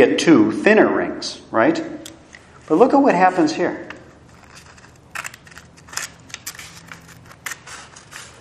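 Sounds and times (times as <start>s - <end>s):
speech: 0.0s - 2.0s, 2.7s - 3.9s
paper rustling: 2.4s - 8.3s
scissors cutting paper: 4.3s - 8.3s.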